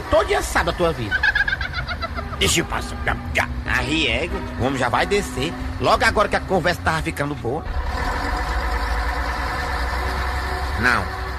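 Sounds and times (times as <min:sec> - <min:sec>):
large bus engine idling: 0:00.0 - 0:11.3
speech: 0:00.2 - 0:01.3, 0:02.4 - 0:08.1, 0:10.8 - 0:11.3
laughter: 0:00.2 - 0:02.8.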